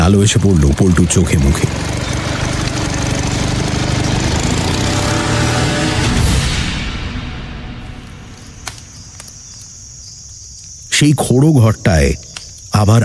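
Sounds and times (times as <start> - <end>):
speech: 0.0 - 2.2, 11.0 - 13.0
motorboat engine speeding along: 0.0 - 6.8.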